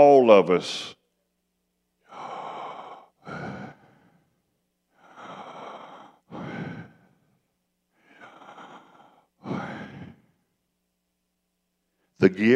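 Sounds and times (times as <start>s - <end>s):
speech: 0.0s - 1.0s, 12.2s - 12.5s
slow deliberate breathing in and out: 2.0s - 10.6s.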